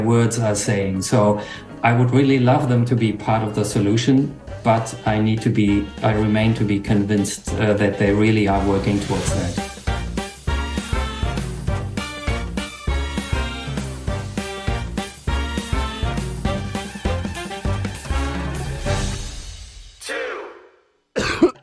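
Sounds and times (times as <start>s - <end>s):
speech: 0.0s - 9.7s
rhythmic music bed: 0.4s - 20.3s
harsh coughs: 21.2s - 21.6s.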